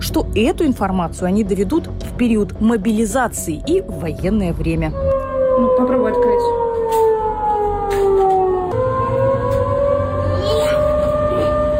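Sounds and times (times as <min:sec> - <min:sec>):
speech: 0:00.1 - 0:06.6
civil defense air raid siren wailing: 0:04.6 - 0:11.7.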